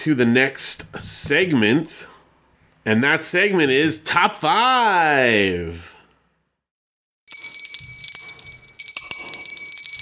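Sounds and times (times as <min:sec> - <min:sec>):
speech: 0:00.0 - 0:02.1, 0:02.8 - 0:06.0
bright metallic bell ringing: 0:07.3 - 0:10.0.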